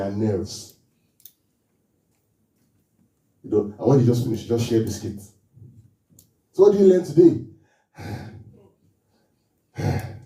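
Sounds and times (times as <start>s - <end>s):
speech: 0.0s - 0.8s, 3.4s - 5.3s, 6.6s - 8.3s
children breathing in and out: 7.6s - 10.2s.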